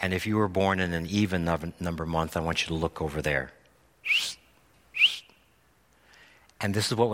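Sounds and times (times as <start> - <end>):
speech: 0.0 - 4.4, 6.6 - 7.1
person whistling like a shepherd calling sheep: 4.0 - 5.4.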